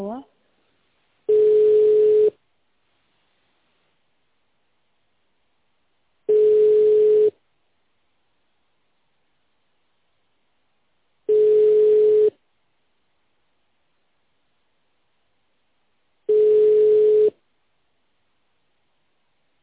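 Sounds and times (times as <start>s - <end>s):
telephone ringback tone while a call tries to connect: 1.3s - 2.4s, 6.3s - 7.3s, 11.3s - 12.4s, 16.3s - 17.4s.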